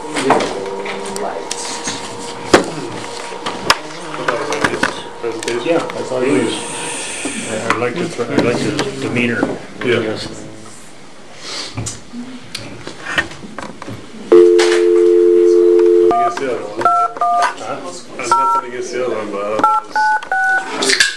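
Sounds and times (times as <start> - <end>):
room noise: 0.0 - 21.1
speech: 5.7 - 6.7, 7.5 - 10.4
telephone dial tone: 14.3 - 16.4
telephone keypad dialing beeps: 14.3 - 17.6, 19.6 - 20.8.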